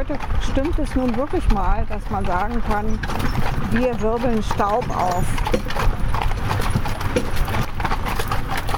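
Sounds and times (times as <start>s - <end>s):
speech: 0.0s - 6.0s
horse hooves clip-clopping on a farm gravel track during a horse-drawn ride: 0.0s - 8.7s.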